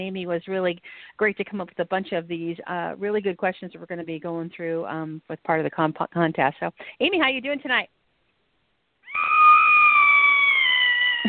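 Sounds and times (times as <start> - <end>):
speech: 0.0 - 8.0
long high-pitched playful Halloween-style scream: 9.0 - 11.2.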